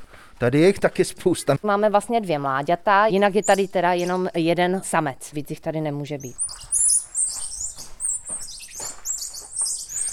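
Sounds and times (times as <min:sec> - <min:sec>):
speech: 0:00.4 - 0:06.6
small monkeys chirping and squeaking in an outdoor enclosure: 0:03.4 - 0:04.3, 0:06.2 - 0:10.1.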